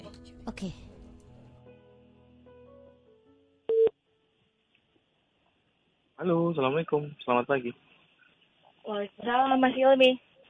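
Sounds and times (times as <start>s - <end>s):
speech: 0.6s - 0.8s, 6.2s - 7.9s, 9.0s - 10.3s
telephone ringback tone while a call is being placed: 3.7s - 3.9s.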